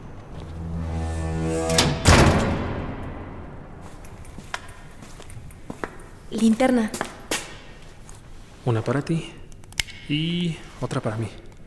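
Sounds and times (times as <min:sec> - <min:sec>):
door creaking shut: 0:00.0 - 0:04.3
heavy door thud: 0:00.6 - 0:03.4
speech: 0:06.3 - 0:07.1, 0:08.7 - 0:09.4, 0:10.1 - 0:11.4.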